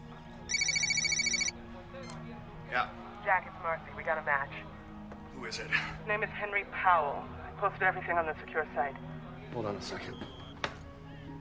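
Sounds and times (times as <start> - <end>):
cell phone ringing with a warbling electronic trill: 0.5 - 1.5
speech: 2.7 - 4.8, 5.4 - 10.4.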